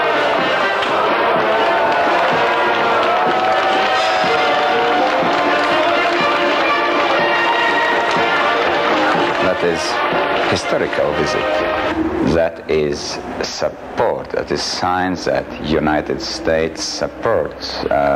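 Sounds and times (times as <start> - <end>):
people shouting in a cheering crowd: 0.0 - 10.5
large crowd cheering outdoors at the Freedom Monument in Riga Latvia: 0.0 - 14.2
speech: 9.6 - 18.1.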